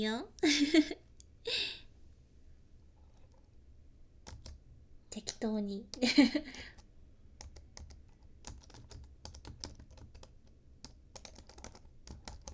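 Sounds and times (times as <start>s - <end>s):
speech: 0.0s - 1.7s, 5.4s - 6.7s
low hum: 0.0s - 12.5s
typing on a computer keyboard: 3.0s - 3.5s, 4.2s - 12.5s.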